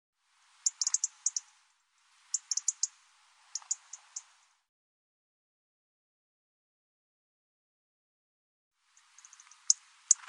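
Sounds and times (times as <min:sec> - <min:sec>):
European robin ticking: 0:00.6 - 0:01.5, 0:02.3 - 0:04.3, 0:09.0 - 0:10.2.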